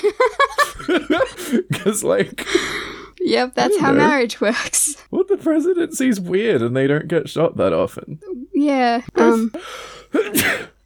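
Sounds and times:
laughter: 0.0s - 2.8s
speech: 1.8s - 10.7s
person sneezing: 9.2s - 10.8s.

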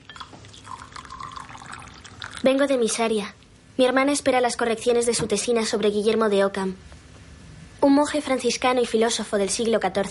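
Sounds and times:
tea pouring into a cup at a small kitchen table: 0.1s - 2.5s
speech: 2.4s - 6.9s, 7.8s - 10.0s.

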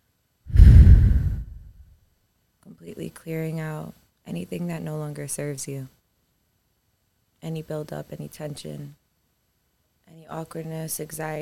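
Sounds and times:
long exhaled breath during a guided breathing exercise: 0.5s - 1.8s
speech: 2.8s - 6.0s, 7.4s - 9.0s, 10.1s - 11.4s.

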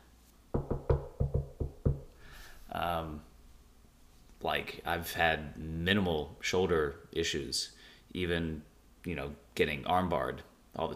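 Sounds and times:
knuckles knocking on wood: 0.6s - 2.1s
speech: 2.7s - 3.3s, 4.4s - 10.9s.

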